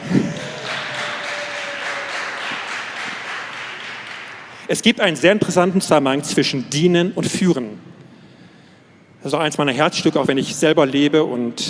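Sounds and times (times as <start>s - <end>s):
audience clapping: 0.0s - 4.7s
speech: 4.7s - 7.9s, 9.2s - 11.6s.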